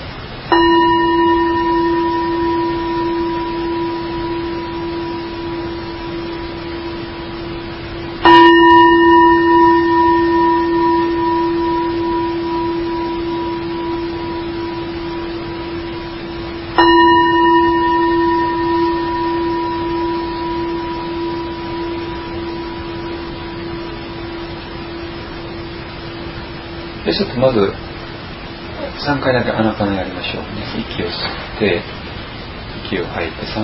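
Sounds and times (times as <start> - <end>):
bell struck for a breathing meditation: 0.5 - 27.3
speech: 27.2 - 27.8, 29.0 - 32.1, 32.9 - 33.6.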